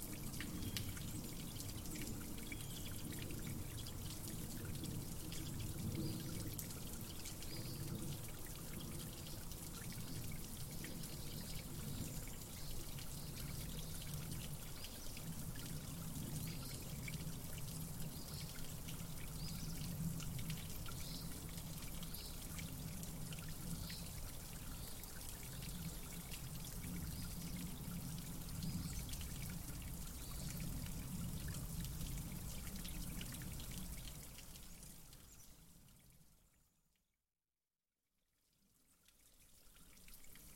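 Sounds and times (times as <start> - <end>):
mountainside stream running through forest woods: 0.0 - 36.1, 39.0 - 40.5.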